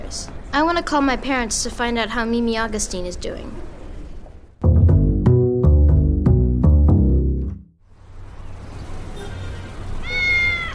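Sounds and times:
speech: 0:00.1 - 0:03.7
bright plucked music: 0:04.6 - 0:07.8
cat meowing: 0:10.0 - 0:10.7.

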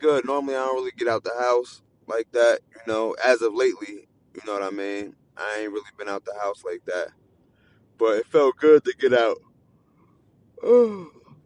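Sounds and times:
speech: 0:00.0 - 0:07.2, 0:08.0 - 0:09.5, 0:10.6 - 0:11.2
person yawning: 0:10.6 - 0:11.2.

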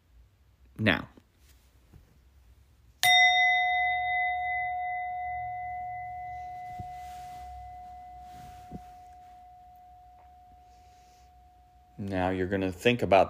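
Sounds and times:
speech: 0:00.8 - 0:01.1, 0:12.3 - 0:13.2
meditation bell struck and ringing: 0:03.0 - 0:12.7.

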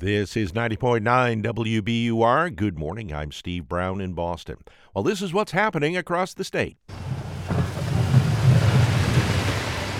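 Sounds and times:
speech: 0:00.0 - 0:07.1
snowplow heavy engine rumbling: 0:06.9 - 0:09.9.

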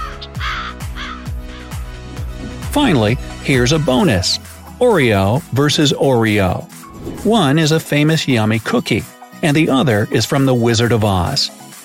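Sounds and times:
raven croaking: 0:00.0 - 0:02.7
speech: 0:02.8 - 0:11.6.

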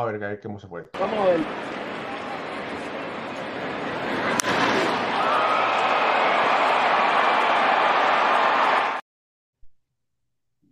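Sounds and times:
speech: 0:00.0 - 0:02.0
stadium crowd roaring: 0:01.0 - 0:09.0
baseball bat crack of a home run: 0:01.4 - 0:08.4.

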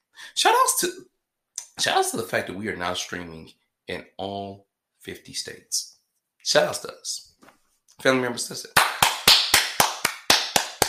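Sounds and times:
speech: 0:00.3 - 0:01.1, 0:01.8 - 0:09.0
crisp hand claps: 0:08.8 - 0:10.8.

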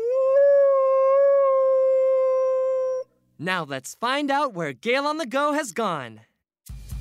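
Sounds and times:
wolf howling: 0:00.0 - 0:03.1
speech: 0:03.4 - 0:06.3.

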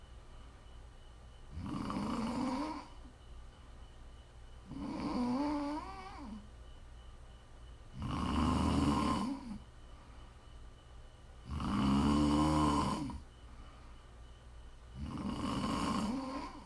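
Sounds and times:
faint steady hum: 0:00.0 - 0:16.6
quiet breathing: 0:00.0 - 0:16.6
loud rasping snores: 0:01.5 - 0:03.0, 0:04.7 - 0:06.4, 0:08.0 - 0:09.6, 0:11.4 - 0:13.2, 0:15.0 - 0:16.6.

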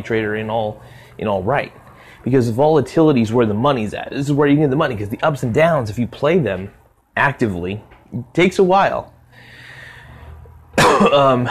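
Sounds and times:
speech: 0:00.0 - 0:09.5, 0:11.0 - 0:11.4
person coughing: 0:10.8 - 0:11.4.

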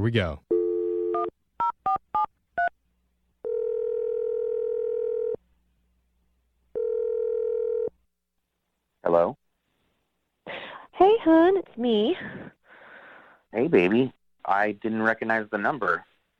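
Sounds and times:
speech: 0:00.0 - 0:00.4, 0:09.1 - 0:09.4, 0:11.0 - 0:12.6, 0:13.5 - 0:16.1
phone dial tone: 0:00.5 - 0:02.7, 0:03.4 - 0:05.4, 0:06.7 - 0:07.9.

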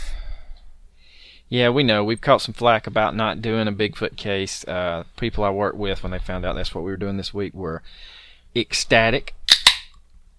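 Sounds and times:
speech: 0:01.5 - 0:09.4
Sierra Nevada Bigfoot Barley Wine Style Ale bottle cap snapping off: 0:09.5 - 0:10.0.

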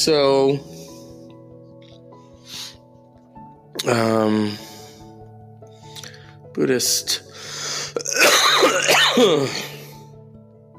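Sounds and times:
speech: 0:00.0 - 0:00.7, 0:03.8 - 0:04.7, 0:06.6 - 0:09.7
harsh raspy cough: 0:07.9 - 0:09.8.

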